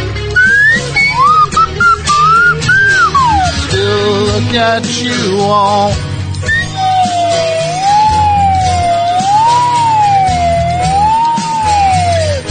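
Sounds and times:
slide whistle playing a slow wavering melody: 0.4 - 3.8, 6.4 - 12.4
speech: 4.6 - 6.1.

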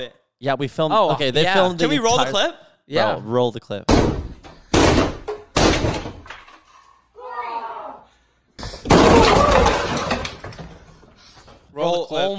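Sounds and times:
speech: 0.0 - 4.1, 11.8 - 12.3
bare-fisted punch crashing a hole through a wooden door: 3.9 - 6.2
door wood splintering and cracking: 8.9 - 11.0.

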